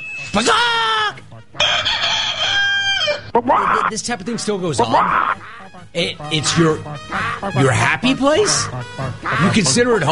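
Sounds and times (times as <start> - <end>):
speech: 0.4 - 0.9, 3.4 - 10.0
rooster crowing: 1.6 - 3.3.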